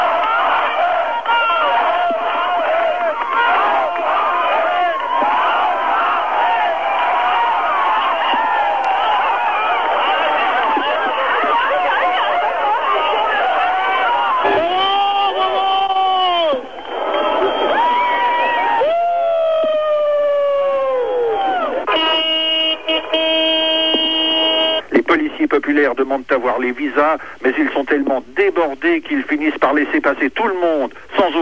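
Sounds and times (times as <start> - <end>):
large crowd shouting and cheering joyfully at a Wall crossing point: 0.0 - 24.8
car horns honking: 21.8 - 24.9
speech: 26.0 - 31.3.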